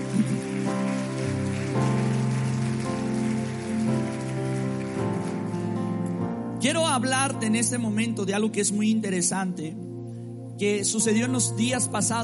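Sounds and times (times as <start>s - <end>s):
audience clapping: 0.0s - 6.2s
sustained keyboard chords: 0.0s - 12.2s
speech: 6.6s - 9.9s, 10.6s - 12.2s.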